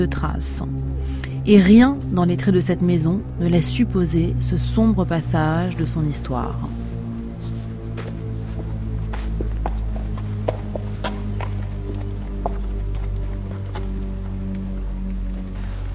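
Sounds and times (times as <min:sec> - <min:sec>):
speech: 0:00.0 - 0:06.8
loud steady low hum: 0:00.0 - 0:15.9
horse hooves clip-clopping near an equestrian centre: 0:07.2 - 0:15.9.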